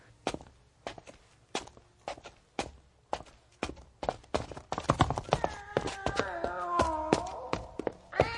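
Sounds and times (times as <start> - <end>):
heavy footsteps thudding down steps: 0.2 - 8.3
cat meowing and yowling: 5.4 - 8.3.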